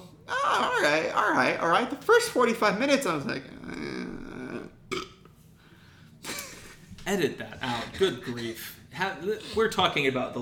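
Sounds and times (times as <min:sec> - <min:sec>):
speech: 0:00.5 - 0:03.6, 0:07.1 - 0:10.4
man belching: 0:03.6 - 0:05.2.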